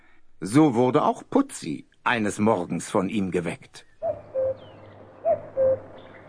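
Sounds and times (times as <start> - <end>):
speech: 0.4 - 3.9
cuckoo calling: 3.9 - 6.2.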